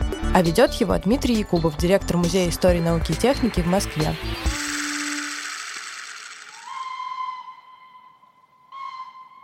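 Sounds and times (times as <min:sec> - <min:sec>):
speech: 0:00.4 - 0:04.6
steam locomotive whistle at a railway: 0:06.6 - 0:09.3.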